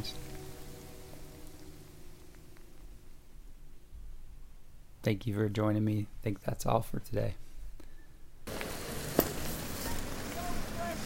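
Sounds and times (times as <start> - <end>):
steady rain falling in a downpour during a walk: 0.0 - 3.9, 8.5 - 11.0
speech: 5.0 - 7.4.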